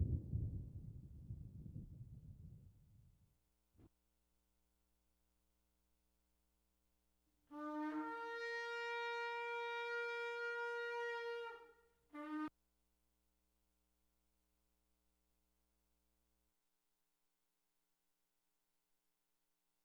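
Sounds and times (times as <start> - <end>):
deep thunder rumbling: 0.0 - 2.8
steady bright horn-like tone: 7.5 - 12.5.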